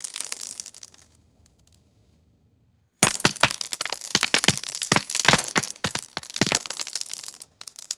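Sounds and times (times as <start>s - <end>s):
loose stones falling and clattering: 0.0s - 1.0s, 3.0s - 7.9s.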